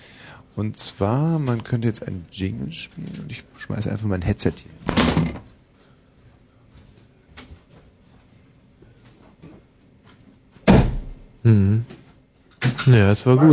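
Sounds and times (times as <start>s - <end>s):
speech: 0.5s - 5.5s, 12.9s - 13.5s
door shutting with a heavy thud: 4.8s - 5.5s, 10.6s - 11.3s.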